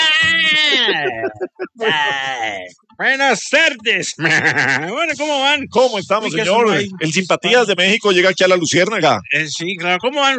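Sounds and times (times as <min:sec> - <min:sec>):
goat bleating: 0:00.0 - 0:01.2, 0:01.8 - 0:02.7, 0:04.2 - 0:05.0
laughter: 0:00.0 - 0:02.7, 0:04.1 - 0:05.3
speech: 0:00.8 - 0:10.3.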